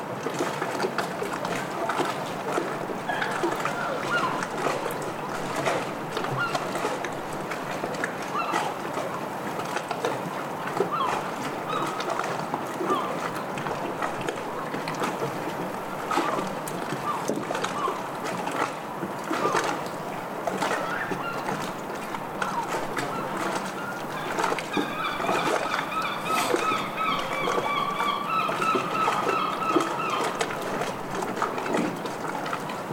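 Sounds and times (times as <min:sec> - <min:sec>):
waves lapping against a harbour wall: 0:00.0 - 0:32.9
small splashes and knocks: 0:00.2 - 0:32.9
gull calling: 0:03.0 - 0:05.4, 0:06.2 - 0:06.9, 0:08.3 - 0:08.8, 0:10.8 - 0:13.3, 0:16.0 - 0:18.1, 0:20.5 - 0:30.9.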